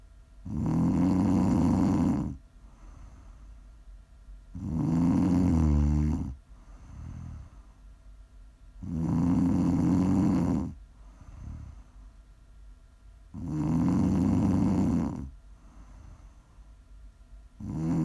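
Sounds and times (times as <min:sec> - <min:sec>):
person snoring: 0:00.4 - 0:03.3, 0:04.6 - 0:07.6, 0:08.8 - 0:11.9, 0:13.4 - 0:16.3, 0:17.6 - 0:18.0.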